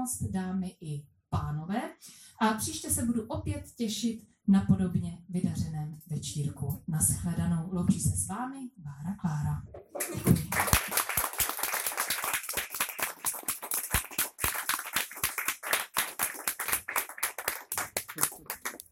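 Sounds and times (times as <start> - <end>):
speech: 0.0 - 11.0
audience applause: 10.0 - 18.8.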